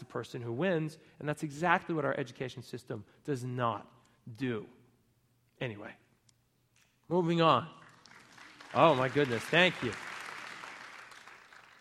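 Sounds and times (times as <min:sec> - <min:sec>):
speech: 0:00.1 - 0:04.8, 0:05.6 - 0:06.0, 0:07.1 - 0:07.8, 0:08.7 - 0:10.1
audience applause: 0:07.8 - 0:11.7.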